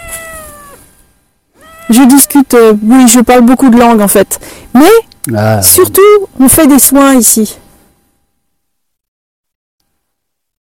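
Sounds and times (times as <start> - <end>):
cat meowing: 0.0 - 0.9, 1.6 - 2.3
speech: 1.9 - 7.6.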